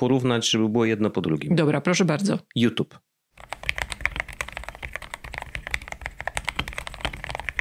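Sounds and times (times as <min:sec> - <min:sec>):
speech: 0:00.0 - 0:03.5
typing on a computer keyboard: 0:03.4 - 0:07.5.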